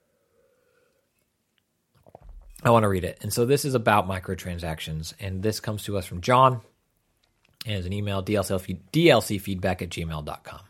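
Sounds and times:
faint steady hum: 0:00.0 - 0:10.6
sipping and swallowing water: 0:01.9 - 0:02.6
speech: 0:02.6 - 0:06.7, 0:07.6 - 0:10.6.

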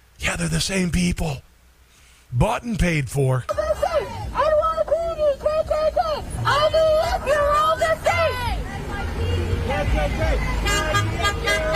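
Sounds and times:
traffic rumble: 0:00.0 - 0:11.7
speech: 0:00.3 - 0:01.5, 0:02.3 - 0:03.6
laughter: 0:03.5 - 0:04.5
street protest crowd chanting: 0:05.4 - 0:11.7
car horns honking at a protest: 0:06.3 - 0:11.7.

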